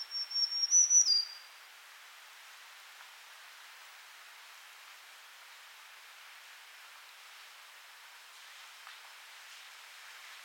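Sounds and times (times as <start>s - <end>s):
black-throated green warbler Setophaga virens buzzy song: 0.0s - 1.5s
soft hiss: 0.0s - 10.4s.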